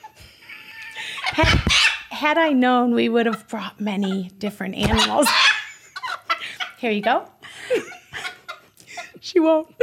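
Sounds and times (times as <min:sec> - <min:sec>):
chicken clucking: 0:00.0 - 0:02.1, 0:03.2 - 0:07.2
speech: 0:01.4 - 0:05.5, 0:06.8 - 0:07.9, 0:09.3 - 0:09.8.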